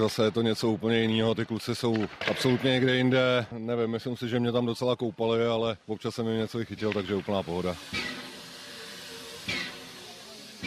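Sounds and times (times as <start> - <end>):
speech: 0.0 - 8.2
steam locomotive hissing at a railway station: 5.9 - 10.6.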